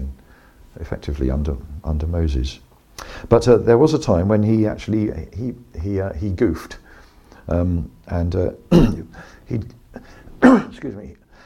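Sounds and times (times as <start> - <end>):
speech: 0.8 - 6.8, 7.5 - 11.2
man clearing throat near a microphone: 8.7 - 9.3, 10.0 - 10.8
man coughing near a microphone: 8.7 - 9.3, 10.0 - 10.8.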